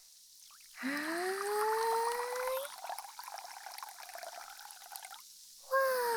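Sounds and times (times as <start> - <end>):
fizzy drink poured into a glass: 0.5 - 5.2
speech: 0.8 - 1.2.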